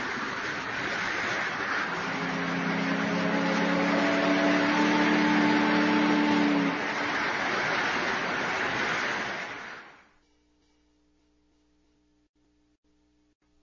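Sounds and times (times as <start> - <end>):
motorboat engine hum: 0.0 - 10.0
abrupt loud noise: 0.0 - 10.1
wash of water rushing from a motorboat: 0.0 - 10.1.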